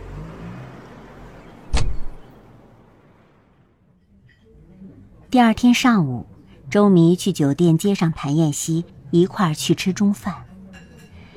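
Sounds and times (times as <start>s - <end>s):
car door opening with sharp clunk: 1.7s - 2.3s
speech: 5.3s - 10.4s.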